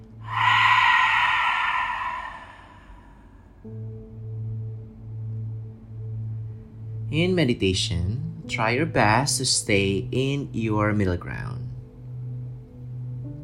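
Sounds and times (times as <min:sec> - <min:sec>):
deep meditation breath in through the nose and out through the mouth: 0:00.2 - 0:03.6
speech: 0:07.1 - 0:11.6.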